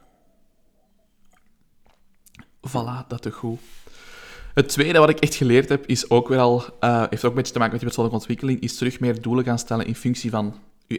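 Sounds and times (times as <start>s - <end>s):
person sipping water: 0.1s - 2.6s
swallow: 0.9s - 2.6s
sharp mouth clicks: 0.9s - 2.7s
quiet wet mouth sounds: 1.2s - 2.6s
speech: 2.7s - 10.9s.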